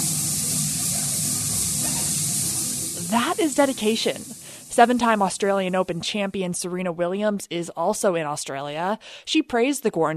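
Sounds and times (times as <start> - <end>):
shower water spraying in a bathroom: 0.0 - 6.3
speech: 3.1 - 10.1.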